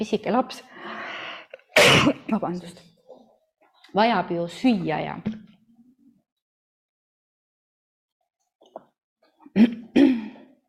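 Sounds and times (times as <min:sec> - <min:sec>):
speech: 0:00.0 - 0:00.7, 0:01.9 - 0:02.9, 0:03.9 - 0:05.4, 0:09.5 - 0:10.1
person coughing into a microphone: 0:01.8 - 0:02.3, 0:09.6 - 0:10.4.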